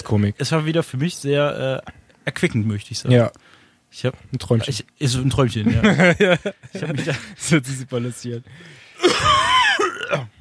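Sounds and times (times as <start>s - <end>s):
speech: 0.1s - 9.4s, 10.1s - 10.3s
laughter: 5.6s - 7.7s
loud raspy wheezy cough into the microphone: 9.0s - 10.3s.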